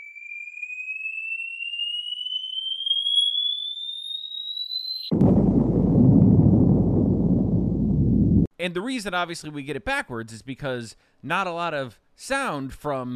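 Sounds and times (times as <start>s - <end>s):
falling bomb whistle with Doppler pitch shift: 0.0s - 7.5s
speech: 5.1s - 5.4s, 8.6s - 13.1s
low rumbling blast: 5.1s - 8.5s.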